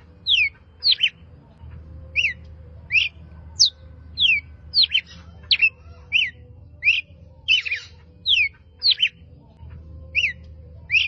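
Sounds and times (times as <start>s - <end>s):
low steady hum: 0.0s - 11.0s
red-cowled cardinal giving sharp high downslurred chirps: 0.2s - 1.2s, 2.2s - 9.2s.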